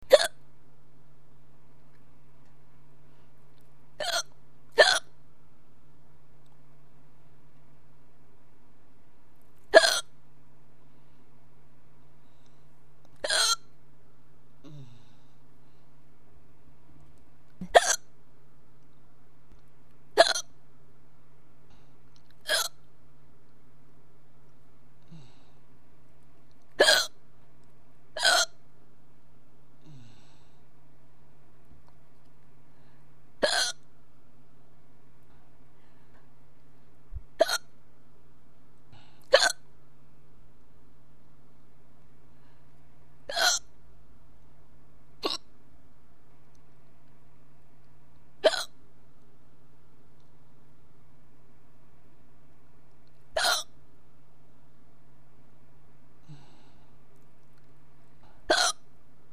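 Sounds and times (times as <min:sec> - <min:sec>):
person hiccuping: 0:00.0 - 0:00.4, 0:04.0 - 0:05.1, 0:09.8 - 0:10.1, 0:13.2 - 0:13.6, 0:17.6 - 0:18.0, 0:20.2 - 0:20.5, 0:22.5 - 0:22.8, 0:26.8 - 0:27.2, 0:28.2 - 0:28.6, 0:33.4 - 0:33.8, 0:39.3 - 0:39.6, 0:43.3 - 0:43.7, 0:45.2 - 0:45.5, 0:48.4 - 0:48.7, 0:53.4 - 0:53.7, 0:58.5 - 0:58.8.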